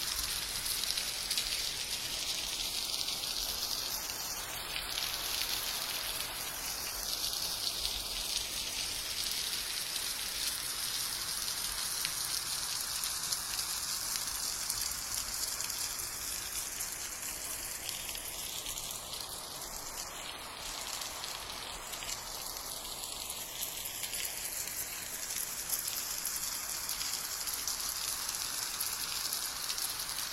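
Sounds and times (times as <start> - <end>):
steady rain: 0.0 - 30.3.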